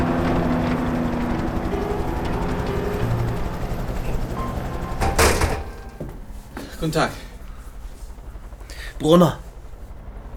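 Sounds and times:
outdoor din of a military base in the morning: 0:00.0 - 0:06.2
clattering burst: 0:00.0 - 0:06.3
helicopter running at a military base: 0:00.0 - 0:10.3
speech: 0:06.8 - 0:07.2, 0:09.0 - 0:09.4.

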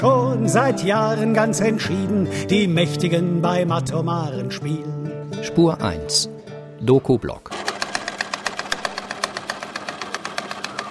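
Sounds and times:
speech: 0:00.0 - 0:07.6
sewing machine running with needle clattering over motor hum: 0:07.5 - 0:10.8.

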